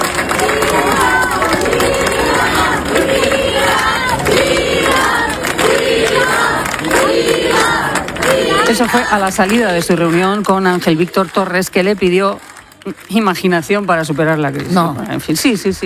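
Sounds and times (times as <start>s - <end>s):
large crowd shouting and cheering: 0.0s - 10.2s
large crowd clapping: 0.0s - 15.8s
speech: 8.7s - 15.8s.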